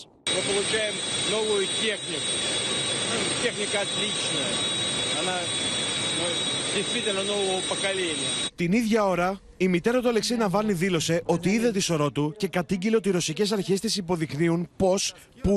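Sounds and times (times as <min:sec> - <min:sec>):
Tu-160M strategic bomber jet engines roaring with a high-pitched whine in flight: 0:00.0 - 0:08.6
speech: 0:00.0 - 0:15.5.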